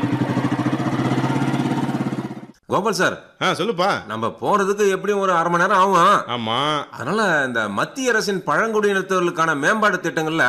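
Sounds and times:
speech: 0.0s - 0.4s, 2.7s - 10.4s
motorcycle engine starting and running with a low throbbing putter: 0.0s - 2.6s.

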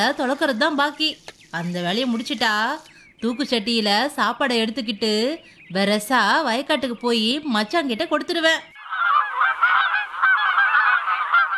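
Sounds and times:
speech: 0.0s - 8.7s
crows cawing: 8.8s - 11.5s.

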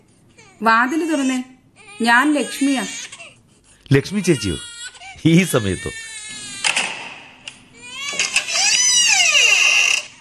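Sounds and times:
infant crying: 0.4s - 3.4s, 4.1s - 6.7s, 7.8s - 10.2s
speech: 0.6s - 3.0s, 3.9s - 6.0s.

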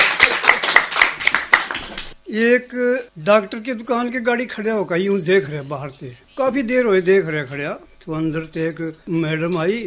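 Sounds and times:
audience clapping at a live joke-telling show: 0.0s - 2.2s
speech: 2.3s - 9.8s.

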